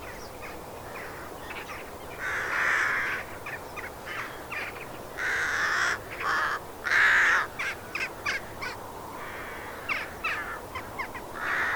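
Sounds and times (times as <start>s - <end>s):
steady hiss of background noise: 0.0s - 11.7s
crow cawing in a field: 0.9s - 3.3s, 4.0s - 11.7s.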